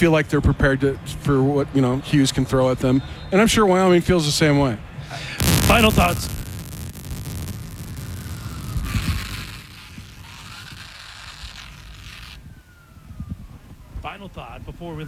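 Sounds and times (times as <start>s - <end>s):
speech: 0.0s - 6.4s, 14.5s - 15.0s
police siren wailing: 0.0s - 15.0s
burst of broadband noise: 2.1s - 15.0s.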